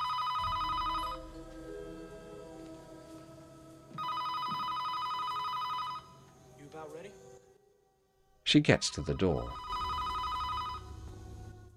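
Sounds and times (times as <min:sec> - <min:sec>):
telephone ringing in a hall: 0:00.0 - 0:01.3, 0:04.0 - 0:06.2, 0:09.0 - 0:11.0
speech: 0:08.5 - 0:09.6.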